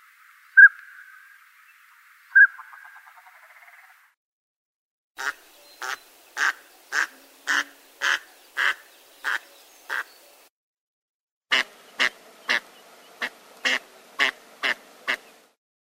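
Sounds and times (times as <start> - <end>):
Northern pintail Anas acuta quacking: 5.2 - 10.1, 11.5 - 15.3.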